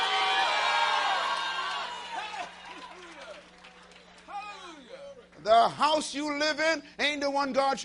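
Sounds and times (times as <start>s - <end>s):
audience shouting hallelujah and cheering: 0.0s - 3.6s, 4.2s - 5.1s
speech: 5.5s - 7.8s.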